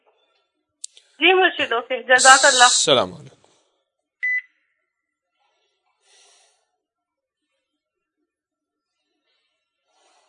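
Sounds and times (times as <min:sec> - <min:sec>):
speech: 0:01.2 - 0:03.4
phone call disconnect beep: 0:04.2 - 0:04.5.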